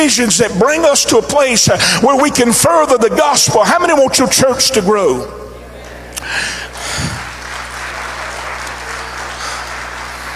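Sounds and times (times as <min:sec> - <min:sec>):
speech: 0:00.0 - 0:05.5, 0:06.2 - 0:06.6
room full of people clapping: 0:06.2 - 0:10.3.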